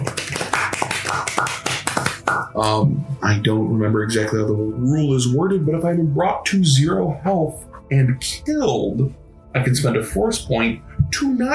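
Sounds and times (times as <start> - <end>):
small group clapping: 0.0 - 2.6
speech: 1.1 - 1.7, 2.3 - 11.5.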